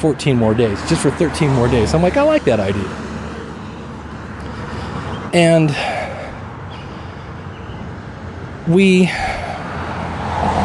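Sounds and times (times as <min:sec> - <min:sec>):
speech: 0:00.0 - 0:03.1, 0:05.3 - 0:06.0, 0:08.7 - 0:09.3
car traffic passing on a nearby street: 0:00.0 - 0:10.6.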